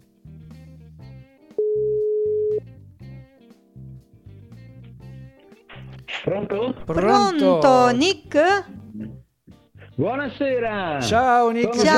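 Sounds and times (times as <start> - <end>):
rhythmic music with low bass notes and chords: 0.0 - 1.6, 2.8 - 11.9
ringing tone of an outgoing phone call: 1.6 - 2.6
speech: 6.3 - 8.8, 10.0 - 11.9.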